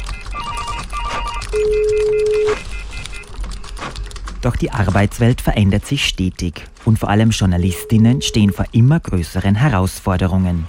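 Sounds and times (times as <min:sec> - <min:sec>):
telephone ringing with short repeated electronic pulses: 0:00.0 - 0:03.3, 0:07.6 - 0:08.6
speech: 0:04.4 - 0:10.6.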